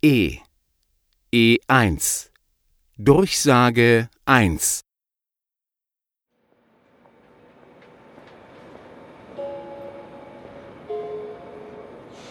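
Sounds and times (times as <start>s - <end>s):
speech: 0.0s - 0.4s, 1.3s - 2.3s, 3.0s - 4.9s
train rolling into a station platform: 6.6s - 12.2s.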